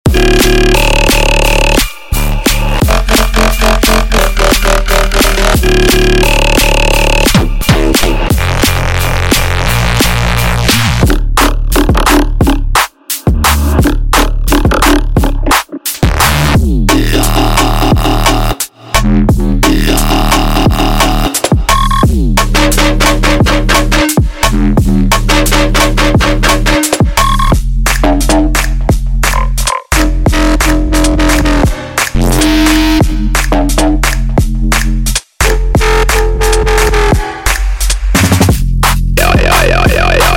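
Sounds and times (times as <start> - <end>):
jump up drum and bass full mix: 0.0 - 40.3.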